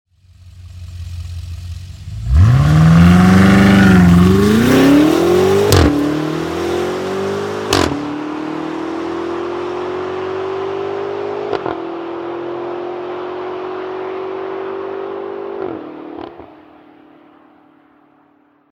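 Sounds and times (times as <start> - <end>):
BMW X5M V8 engine starting: 0.2 - 16.7
BMW X5M V8 engine with launch control: 2.1 - 16.5.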